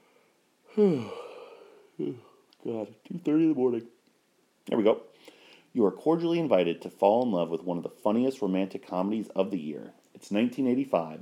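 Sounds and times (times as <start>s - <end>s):
person yawning: 0.7s - 2.4s
speech: 0.8s - 1.2s, 2.0s - 4.0s, 4.7s - 11.1s.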